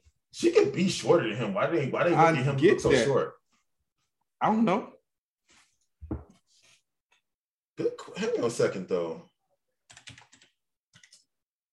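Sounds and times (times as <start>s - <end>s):
speech: 0.4s - 3.4s, 4.4s - 5.0s, 7.8s - 9.3s
fingers typing on a computer keyboard: 9.9s - 11.3s.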